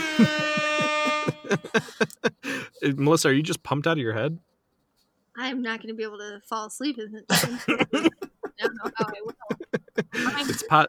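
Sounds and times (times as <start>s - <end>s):
air horn blast: 0.0s - 2.1s
excited voices: 0.0s - 2.7s, 7.3s - 10.8s
people laughing: 0.0s - 2.7s, 7.3s - 10.8s
speech: 0.2s - 0.9s, 2.8s - 4.5s, 5.4s - 10.8s.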